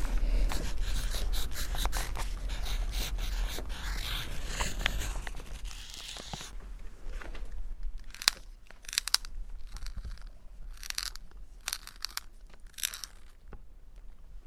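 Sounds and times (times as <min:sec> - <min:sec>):
low steady hum: 0:00.0 - 0:14.4
pencil being sharpened: 0:00.5 - 0:06.5, 0:08.1 - 0:13.3.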